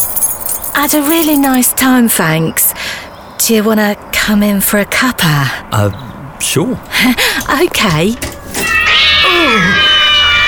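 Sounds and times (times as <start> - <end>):
speech: 0.8 - 2.6, 3.4 - 8.3, 9.3 - 9.8
cat meowing: 8.8 - 10.4.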